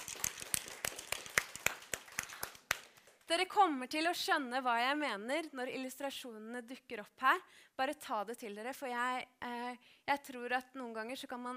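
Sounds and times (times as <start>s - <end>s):
small audience clapping for an illustrator: 0.0s - 3.3s
speech: 3.3s - 11.5s.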